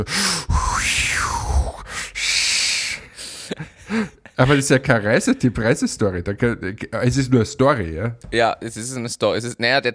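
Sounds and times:
speech: 0.0 - 0.4, 3.5 - 9.9
person imitating heavy straining breaths of someone on the toilet: 0.0 - 4.3.

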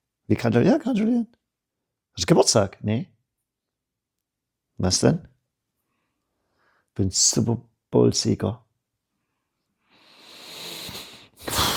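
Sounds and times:
speech: 0.3 - 1.4, 2.2 - 3.1, 4.8 - 5.3, 7.0 - 8.6
heavy huffing exhale: 10.1 - 11.7.

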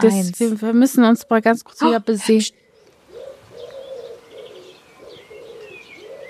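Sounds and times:
speech: 0.0 - 2.6
faint higher bird chirps: 2.3 - 6.2
pigeon cooing: 3.0 - 6.2.

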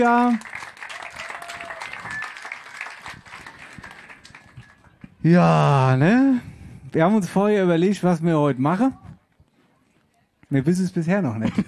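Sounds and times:
speech: 0.0 - 0.5, 5.2 - 9.0, 10.5 - 11.6
audience applause: 0.0 - 5.0.

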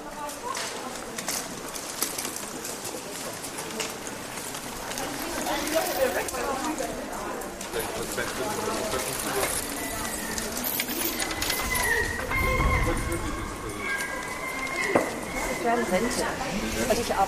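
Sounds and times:
murmur of many voices in a pedestrian shopping street: 0.0 - 17.2
pigeon coos: 9.6 - 17.0
gulls flying over: 9.6 - 17.2
bird calls: 9.7 - 16.4.

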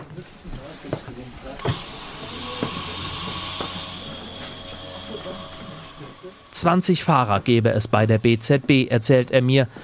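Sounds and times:
rack railway train departing station: 1.5 - 7.9
speech: 6.6 - 9.8.

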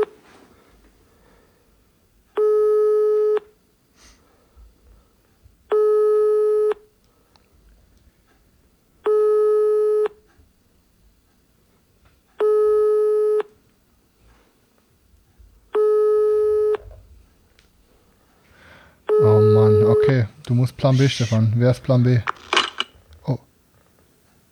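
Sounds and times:
telephone busy tone beeps after a call is hung up: 2.4 - 3.4, 5.7 - 6.8, 9.1 - 10.2, 12.4 - 13.5, 15.8 - 16.8, 19.1 - 20.2
speech: 20.5 - 22.5.

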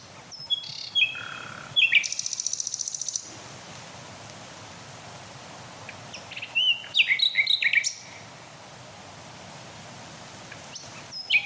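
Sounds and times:
male Common Nightingale singing at night: 0.3 - 3.3, 6.1 - 8.2, 10.7 - 11.4.

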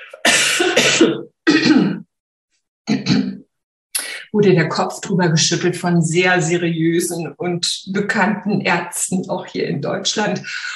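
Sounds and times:
harsh raspy coughs: 0.0 - 2.0
speech: 0.6 - 1.4, 4.4 - 10.7.

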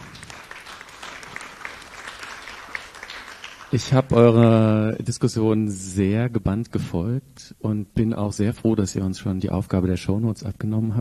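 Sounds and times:
audience clapping: 0.0 - 4.6
speech: 3.7 - 10.9.

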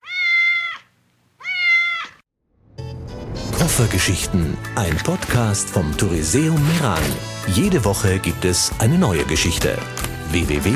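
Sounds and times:
male cat meowing: 0.0 - 2.2
speech: 3.8 - 10.7.

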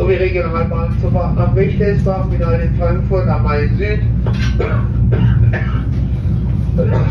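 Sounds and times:
thick low rumble: 0.0 - 7.0
speech: 0.1 - 6.0, 6.8 - 7.0
person coughing in a rough hacking fit: 4.4 - 6.0, 6.8 - 7.0.

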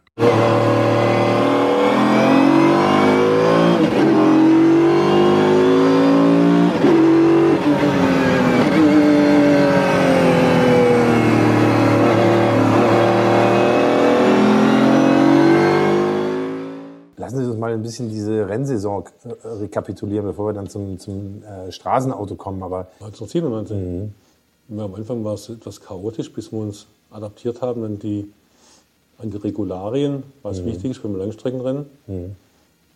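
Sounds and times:
Mercedes-Benz CLK GTR supercar engine revving: 0.2 - 17.0
speech: 17.9 - 28.4, 29.2 - 32.4.

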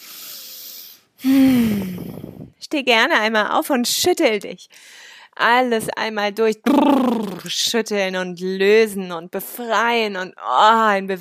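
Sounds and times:
deep breath during a guided relaxation exercise: 0.0 - 2.6, 4.7 - 5.4
speech: 1.2 - 11.1.

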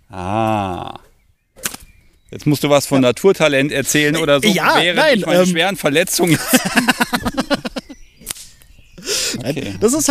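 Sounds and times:
speech: 0.1 - 1.0, 2.3 - 7.5, 9.5 - 10.0
sharp loud whip crack: 1.6 - 1.9, 8.2 - 8.6
laughter: 3.9 - 8.0, 9.0 - 10.0.

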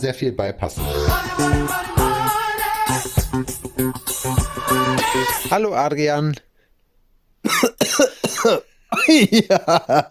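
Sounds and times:
speech: 0.0 - 1.9, 2.9 - 6.5, 7.4 - 10.0
man coughing: 7.5 - 10.0.

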